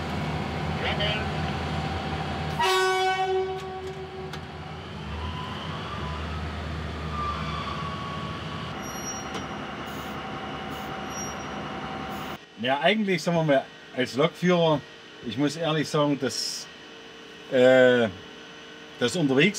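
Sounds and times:
two diesel locomotives low engine rumble: 0.0s - 2.6s, 3.4s - 12.4s
work train cars rolling: 0.0s - 12.4s
diesel locomotive horn blast: 2.5s - 4.4s
speech: 12.6s - 16.7s, 17.5s - 18.2s, 19.0s - 19.5s.

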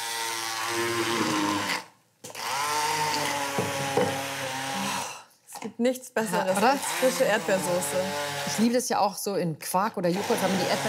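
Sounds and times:
blender motor whining while pureeing strawberries for a fresh sauce: 0.0s - 5.3s, 6.4s - 8.7s, 10.1s - 10.8s
speech: 0.7s - 1.8s, 5.8s - 10.8s.

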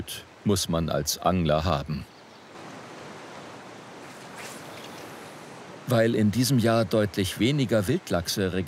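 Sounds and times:
speech: 0.0s - 2.1s, 5.9s - 8.6s
river water flowing: 0.0s - 8.6s
water splash: 2.6s - 5.9s.

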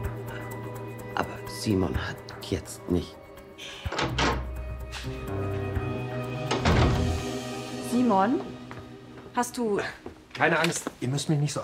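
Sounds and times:
speech: 1.2s - 4.2s, 5.0s - 5.6s, 8.0s - 8.6s, 9.4s - 11.6s
heavy wooden stable door being pushed open: 3.9s - 4.5s, 6.5s - 7.2s.

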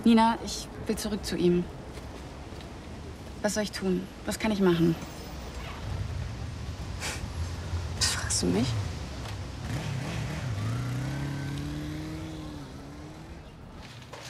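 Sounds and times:
speech: 0.0s - 1.8s, 3.4s - 5.2s, 8.4s - 8.8s
sports car engine as car drives up: 7.2s - 13.8s.

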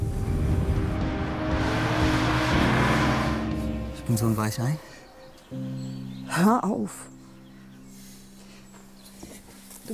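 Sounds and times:
car engine accelerating: 0.0s - 4.4s
speech: 4.1s - 4.9s, 5.5s - 7.1s.

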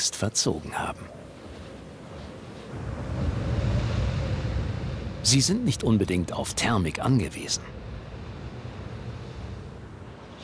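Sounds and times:
speech: 0.0s - 1.2s, 5.2s - 7.7s
Bura cold katabatic wind roaring over land and sea: 0.6s - 10.4s.

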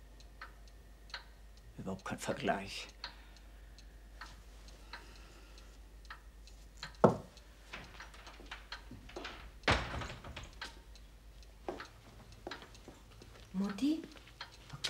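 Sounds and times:
faint clicks and light ticking: 0.0s - 14.8s
speech: 1.8s - 3.0s
back door opening and shutting with wooden clunks: 6.9s - 10.8s.

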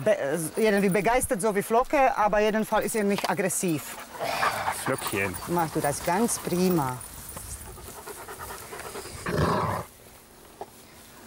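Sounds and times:
speech: 0.0s - 7.1s
adult dog growling back: 4.1s - 6.4s, 9.1s - 9.9s.

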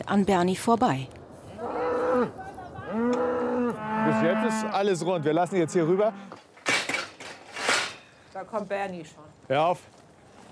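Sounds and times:
speech: 0.1s - 1.2s, 4.1s - 6.4s, 8.4s - 10.0s
naturally hornless cattle lowing during a cattle drive: 1.5s - 6.4s.

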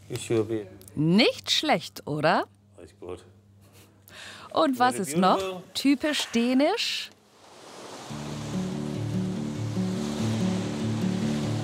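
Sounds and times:
speech: 0.1s - 3.3s, 4.2s - 7.2s
rough North Sea waves breaking: 5.9s - 11.6s
low melodic music: 8.1s - 11.6s.

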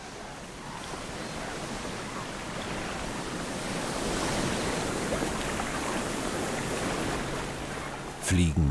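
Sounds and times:
waves washing against the Baltic Sea shore of stone fields and boulders: 0.0s - 8.6s
speech: 8.3s - 8.6s.

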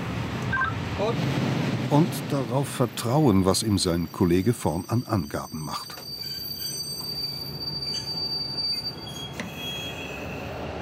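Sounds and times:
work train rumbling on rails: 0.0s - 10.7s
speech: 1.0s - 6.0s
thin high work train wheel squeals: 4.0s - 10.6s.

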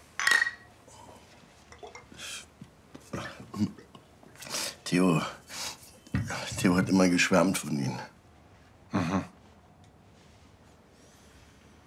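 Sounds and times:
glasses clinking in a toast: 0.2s - 0.7s
speech: 3.6s - 3.8s, 4.9s - 5.4s, 6.6s - 8.2s.

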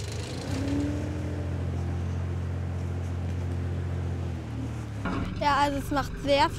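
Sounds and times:
small farm machine engine droning under more throttle: 0.0s - 6.5s
speech: 5.4s - 6.5s.

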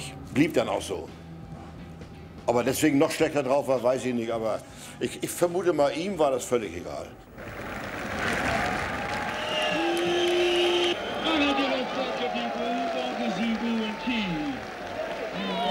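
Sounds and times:
speech: 0.4s - 1.2s, 2.5s - 7.2s
large concert crowd booing: 7.3s - 15.6s
scattered clapping: 7.4s - 15.6s.

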